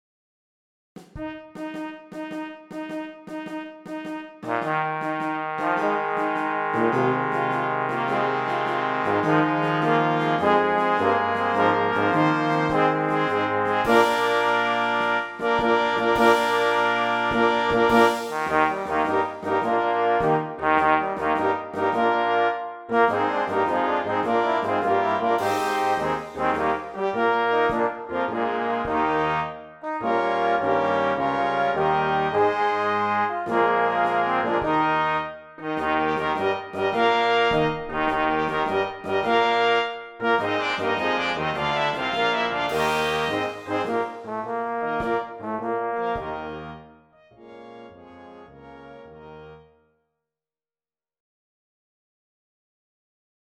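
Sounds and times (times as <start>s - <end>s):
trombone: 1.0s - 49.7s.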